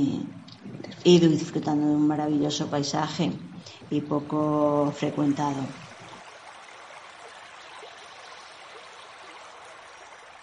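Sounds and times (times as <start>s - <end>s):
river stream flowing: 0.0s - 10.4s
speech: 1.0s - 5.8s.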